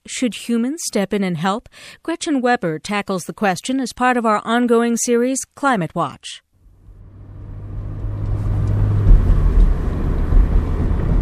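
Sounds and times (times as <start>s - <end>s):
speech: 0.1s - 6.4s
car engine and road rumble driving through green hilly parkland: 6.6s - 11.2s.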